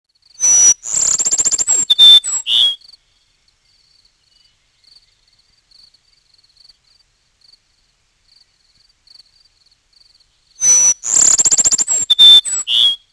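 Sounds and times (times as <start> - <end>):
Cassin's sparrow: 0.2 - 7.0, 10.4 - 13.1.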